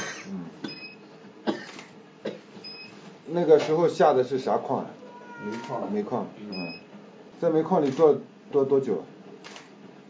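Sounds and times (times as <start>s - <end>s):
harsh coughs: 0.0s - 0.8s, 1.4s - 2.5s
speech: 3.3s - 6.7s, 7.4s - 9.6s.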